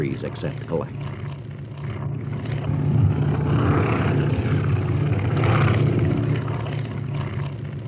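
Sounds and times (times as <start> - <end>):
small propeller airplane landing at Le Bourget Airport: 0.0 - 7.8
speech: 0.2 - 1.2.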